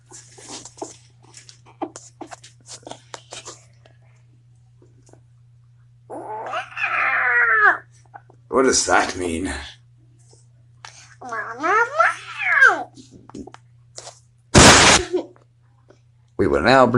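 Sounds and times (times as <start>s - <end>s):
steady low hum: 0.0s - 16.9s
cat giving a loud drawn-out meow: 6.1s - 7.9s, 11.2s - 12.9s
speech: 8.6s - 9.7s, 16.6s - 16.9s.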